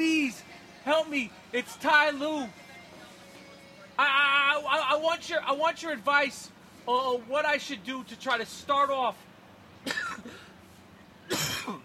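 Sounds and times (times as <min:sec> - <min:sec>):
speech: 0:00.9 - 0:02.6, 0:04.0 - 0:10.4
host coughing on air: 0:09.8 - 0:10.5, 0:11.3 - 0:11.8.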